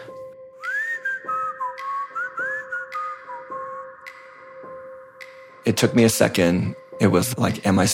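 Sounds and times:
person whistling an old-timey song: 0:00.0 - 0:04.7
speech: 0:05.7 - 0:07.9.

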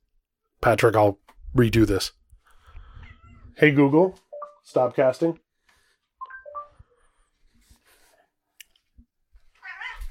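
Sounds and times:
speech: 0:00.6 - 0:02.2, 0:03.6 - 0:05.4
cat meowing: 0:09.6 - 0:10.0.

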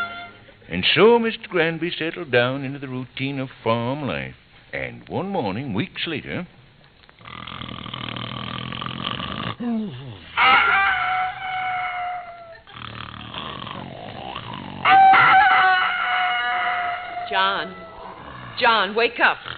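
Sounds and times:
speech: 0:00.7 - 0:06.6, 0:09.6 - 0:10.8, 0:17.3 - 0:17.9, 0:18.6 - 0:19.5
heavy snoring: 0:07.2 - 0:10.3, 0:12.7 - 0:14.9, 0:18.0 - 0:19.5
rooster crowing: 0:10.4 - 0:12.6, 0:14.8 - 0:18.5.

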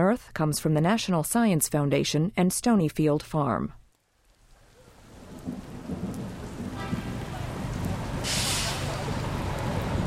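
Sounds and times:
speech: 0:00.1 - 0:03.8
steady rain: 0:03.9 - 0:10.0
low thunder rumbling: 0:04.6 - 0:10.0.

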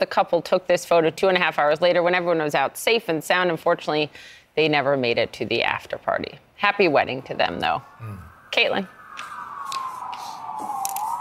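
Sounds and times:
speech: 0:00.0 - 0:09.0
sirens of a presidential motorcade: 0:06.7 - 0:11.1.

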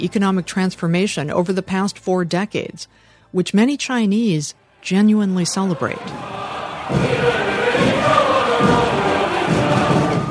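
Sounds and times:
speech: 0:00.0 - 0:07.4
low rhythmic thuds: 0:05.5 - 0:10.2
large crowd cheering at a military parade in China: 0:05.7 - 0:10.2.

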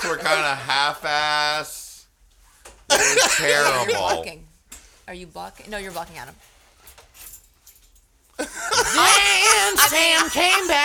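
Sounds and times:
laughter: 0:00.0 - 0:01.2, 0:02.9 - 0:04.3, 0:08.4 - 0:10.8
speech: 0:00.0 - 0:01.9, 0:02.9 - 0:04.4, 0:05.1 - 0:06.5, 0:08.4 - 0:10.8
keys jangling as they are picked up: 0:06.9 - 0:08.1.

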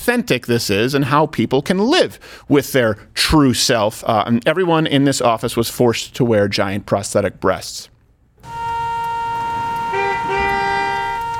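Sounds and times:
speech: 0:00.0 - 0:08.6
car horn honking: 0:08.4 - 0:11.3.

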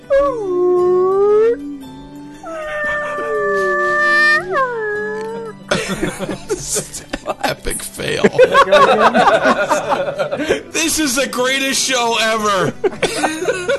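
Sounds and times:
voice imitating a whale call: 0:00.0 - 0:05.6
speech: 0:00.2 - 0:00.6, 0:08.2 - 0:09.7, 0:10.8 - 0:13.7
laughter: 0:05.7 - 0:11.0, 0:12.6 - 0:13.7.

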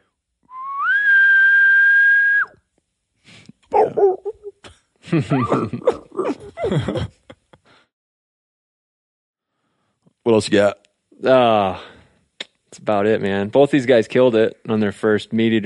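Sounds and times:
person imitating a far-off bull elk whistle: 0:00.5 - 0:02.6
laughter: 0:05.0 - 0:07.7
speech: 0:05.1 - 0:06.0, 0:06.6 - 0:07.2, 0:10.3 - 0:11.9, 0:12.8 - 0:15.6.

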